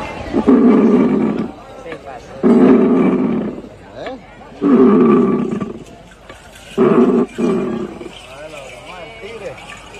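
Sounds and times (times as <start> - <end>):
bramador instrument imitating a jaguar's roar: 0.3 - 1.6, 2.4 - 3.7, 4.6 - 5.9, 6.8 - 8.1.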